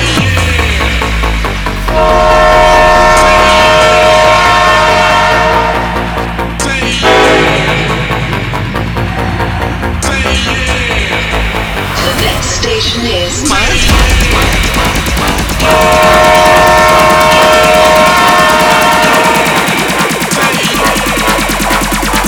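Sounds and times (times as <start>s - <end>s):
sustained tonal whines and hums of departing train: 0.0s - 22.2s
train pulling away from a station platform: 0.0s - 22.2s.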